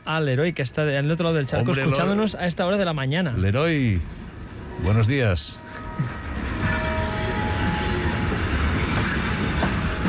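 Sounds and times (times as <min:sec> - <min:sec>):
train rumbling on rails: 0:00.0 - 0:10.0
speech: 0:00.1 - 0:04.2, 0:04.8 - 0:06.2.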